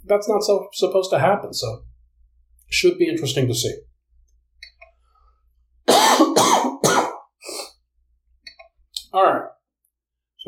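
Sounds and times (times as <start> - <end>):
speech: 0.1 - 1.9, 2.7 - 3.9, 9.2 - 9.5
person coughing: 5.9 - 7.8.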